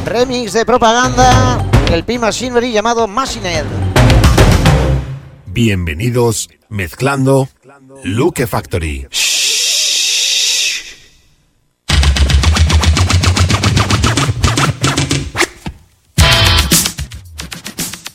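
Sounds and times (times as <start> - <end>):
speech: 0.1 - 3.8, 5.5 - 9.9
punchy electronic beat: 3.8 - 5.0, 11.9 - 15.2, 16.2 - 18.1
rapid turntable scratching: 11.9 - 18.1.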